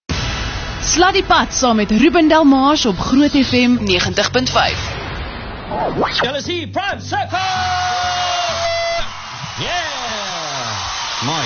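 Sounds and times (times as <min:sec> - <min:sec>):
speech: 0:00.9 - 0:05.0, 0:05.7 - 0:08.2, 0:09.6 - 0:10.2, 0:11.2 - 0:11.4
group of people screaming and whooping: 0:07.4 - 0:11.4.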